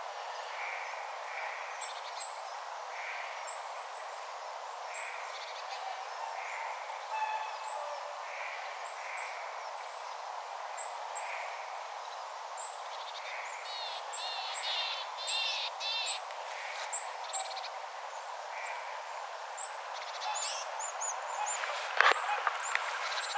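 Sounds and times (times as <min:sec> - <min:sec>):
constant background hiss: 0:00.0 - 0:23.3
tit flock calling: 0:20.0 - 0:23.3.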